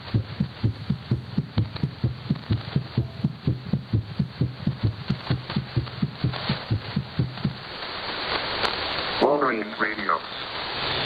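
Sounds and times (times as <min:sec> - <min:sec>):
rapid heartbeat over shortwave radio: 0:00.0 - 0:07.7
hissy band-limited radio static: 0:00.0 - 0:11.0.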